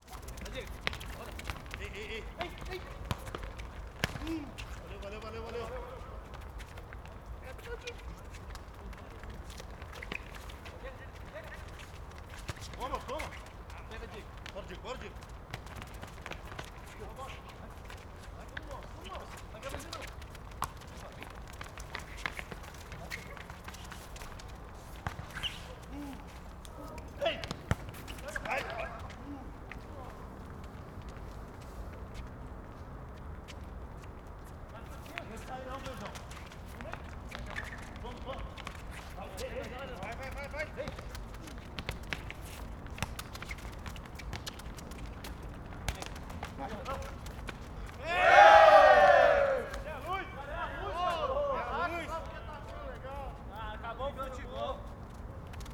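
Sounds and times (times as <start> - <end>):
distant traffic: 0.1 - 55.6
boys shouting while playing on a football court in the Cerrado: 48.0 - 52.1.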